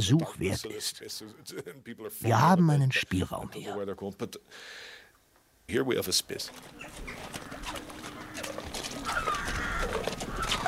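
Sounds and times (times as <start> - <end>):
speech: 0.0 - 5.0, 5.7 - 7.9
faint bird calls: 6.5 - 10.6
hoof clops of horses on a horse farm: 6.5 - 10.6.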